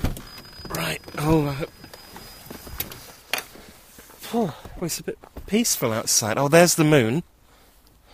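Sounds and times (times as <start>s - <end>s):
car unlocking electronic chirp: 0.2s - 3.0s
speech: 1.2s - 1.8s, 4.8s - 7.3s.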